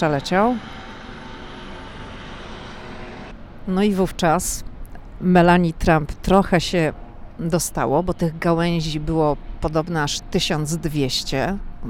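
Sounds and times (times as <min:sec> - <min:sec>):
speech: 0:00.0 - 0:00.8, 0:03.7 - 0:11.8
helicopter engine and rotor roar: 0:00.0 - 0:03.4.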